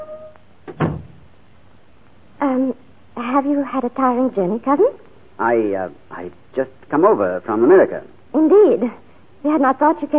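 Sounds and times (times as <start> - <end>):
door swinging open with a dull wooden thud: 0.6 - 1.2
short door rattle: 0.7 - 1.2
speech: 3.4 - 10.1.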